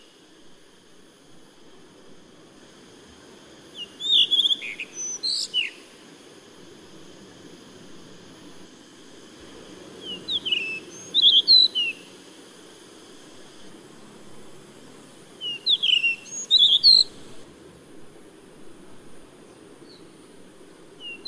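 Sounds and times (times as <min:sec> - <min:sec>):
blue rock thrush: 0:03.8 - 0:05.8, 0:10.1 - 0:12.0, 0:15.4 - 0:17.4.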